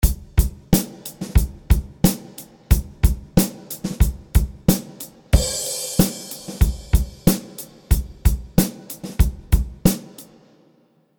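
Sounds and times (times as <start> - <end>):
drums in an arena: 0.0 - 10.8.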